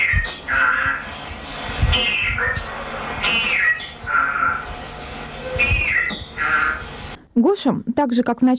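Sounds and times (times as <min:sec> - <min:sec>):
parrot squawking and chattering: 0:00.0 - 0:07.2
speech: 0:07.4 - 0:08.5.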